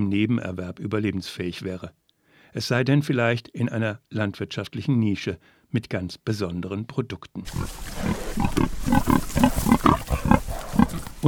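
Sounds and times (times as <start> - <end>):
speech: 0.0 - 9.8
pigs on a small farm grunting: 7.5 - 11.2.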